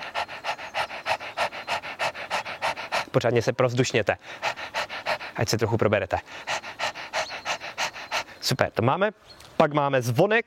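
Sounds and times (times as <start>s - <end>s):
people panting like a dog as a breathing exercise: 0.0s - 8.5s
speech: 3.1s - 4.6s, 5.4s - 6.5s, 8.4s - 10.4s.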